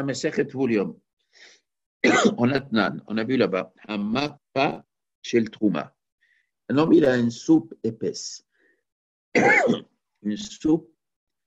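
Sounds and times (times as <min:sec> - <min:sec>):
speech: 0:00.0 - 0:06.0, 0:06.7 - 0:08.5, 0:09.3 - 0:10.9
person clearing throat: 0:02.0 - 0:02.4, 0:09.4 - 0:10.0.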